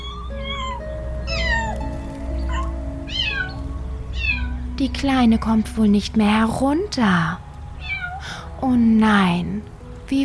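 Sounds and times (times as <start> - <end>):
kitten meowing pitifully: 0.0 - 1.8, 2.4 - 3.6, 4.2 - 4.6, 7.8 - 8.3
steady low hum: 0.0 - 10.2
speech: 4.8 - 7.5, 8.6 - 10.2.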